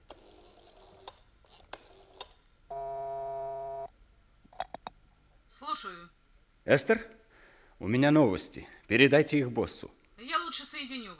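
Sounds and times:
ringback tone of an outgoing telephone call: 2.7 - 3.9
speech: 5.9 - 7.2, 7.8 - 11.1.

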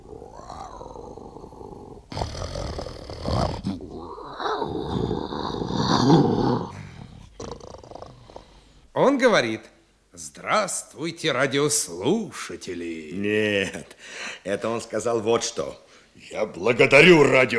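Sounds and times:
lion growling and rumbling: 0.0 - 8.5
speech: 9.2 - 17.5.

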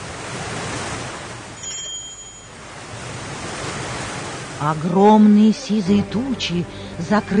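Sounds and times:
stormy sea surging: 0.0 - 7.3
high metallic ring: 1.6 - 2.7
speech: 4.6 - 7.3.

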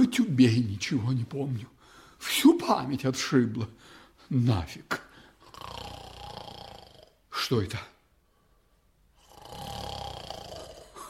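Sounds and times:
speech: 0.0 - 5.0, 7.4 - 7.9
person in bed snoring with rasping inhalation: 5.4 - 7.2, 9.2 - 11.0.

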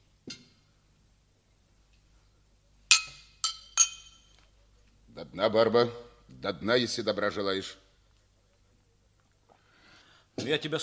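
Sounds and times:
drinking glasses clinking in a toast: 2.9 - 4.4
speech: 5.2 - 7.8, 10.4 - 10.8.

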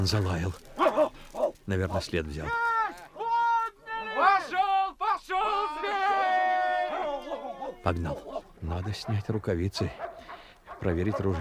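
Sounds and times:
speech: 0.0 - 0.7, 1.7 - 2.8, 7.8 - 10.1, 10.8 - 11.3
hunting beaters shouting and hollering in the forest: 2.4 - 8.6.

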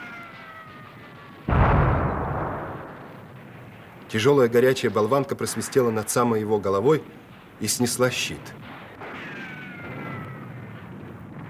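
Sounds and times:
mortar shell explosion: 1.5 - 4.2
speech: 4.1 - 8.7.

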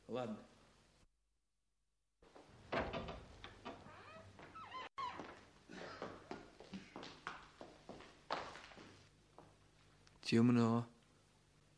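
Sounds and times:
speech: 0.1 - 0.6, 10.3 - 11.0
unlocked door creaking open: 2.6 - 5.4
footsteps walking in across a hard floor: 4.1 - 9.9.

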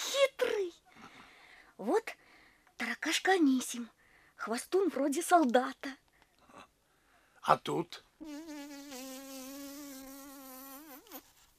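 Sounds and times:
speech: 1.8 - 2.2, 3.0 - 6.0, 7.4 - 8.7
fly buzzing: 8.2 - 11.5.

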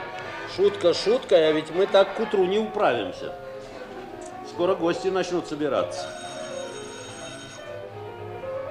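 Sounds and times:
speech: 0.5 - 3.4, 4.6 - 6.2
doorbell ringing with a buzzing metallic tone: 5.9 - 7.8.

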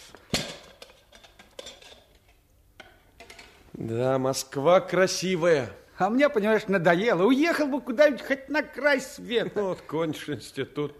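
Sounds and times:
kitchenware knocks and clinks: 0.2 - 2.2, 2.8 - 3.6
small pot and plate clanking: 0.2 - 3.6
speech: 3.8 - 10.9.

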